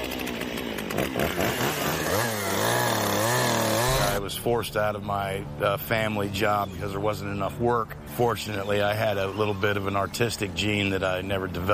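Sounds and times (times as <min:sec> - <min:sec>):
chainsaw roaring and bogging down into wood: 0:00.0 - 0:04.2
speech: 0:01.0 - 0:01.6, 0:04.4 - 0:11.7.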